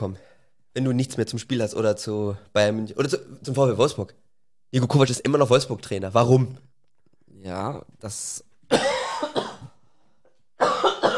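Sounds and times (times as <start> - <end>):
speech: 0.0 - 6.7, 7.4 - 9.4
harsh coughing: 8.7 - 9.8, 10.6 - 11.1.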